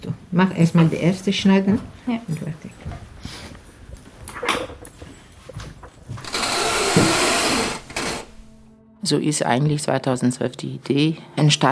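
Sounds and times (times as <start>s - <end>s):
speech: 0.4s - 3.4s, 9.0s - 11.7s
sewing machine stitching fabric: 6.2s - 8.7s.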